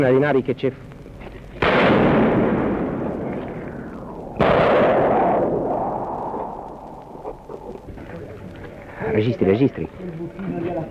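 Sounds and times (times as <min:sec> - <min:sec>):
speech: 0:00.0 - 0:00.9, 0:09.2 - 0:10.8
gunfire in a ruined city during its liberation: 0:01.6 - 0:07.2.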